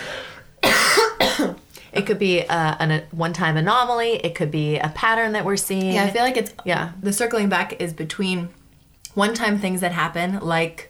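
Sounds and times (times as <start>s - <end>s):
forceful coughs: 0.6s - 1.6s
speech: 2.0s - 8.6s, 9.2s - 10.8s.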